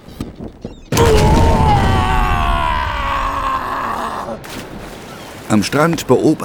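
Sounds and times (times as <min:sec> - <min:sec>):
ship exploding: 0:00.9 - 0:05.5
speech: 0:05.5 - 0:06.4.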